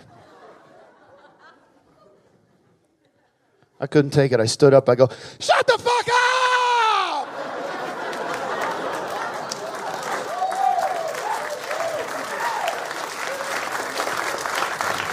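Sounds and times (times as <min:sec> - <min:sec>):
laughter: 0:00.0 - 0:03.4, 0:06.4 - 0:10.7
speech: 0:03.8 - 0:05.9
crowd whooping: 0:06.1 - 0:14.0
sizable audience applauding: 0:06.8 - 0:15.1.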